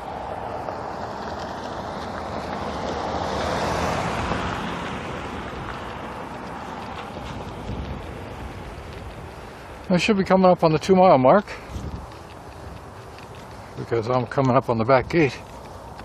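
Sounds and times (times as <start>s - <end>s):
wind noise on the microphone: 0.0s - 9.9s, 11.0s - 13.9s
car approaching along a road: 0.0s - 16.0s
speech: 9.9s - 11.7s, 13.9s - 15.5s.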